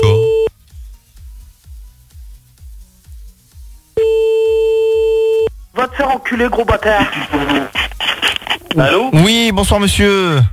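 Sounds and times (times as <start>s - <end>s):
telephone tone while calling someone back: 0.0s - 0.5s, 4.0s - 5.5s
speech: 5.9s - 7.8s, 8.8s - 10.5s.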